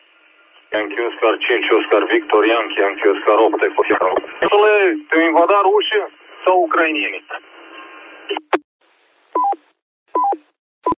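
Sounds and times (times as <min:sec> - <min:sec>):
radio static hiss: 0:00.0 - 0:09.0
speech: 0:00.7 - 0:07.5
click of radio static cutting off: 0:03.8 - 0:04.5.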